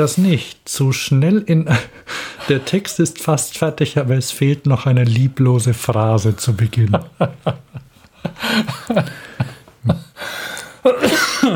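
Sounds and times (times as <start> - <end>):
speech: 0.0 - 11.5
laughter: 1.7 - 3.0, 6.7 - 10.2
person coughing in a loud fit: 10.9 - 11.5.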